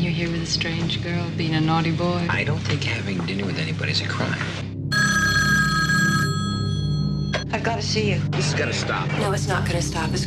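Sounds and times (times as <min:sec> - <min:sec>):
speech: 0:00.2 - 0:04.7, 0:07.5 - 0:10.2
telephone ringing with an electric bell tone: 0:04.9 - 0:07.5.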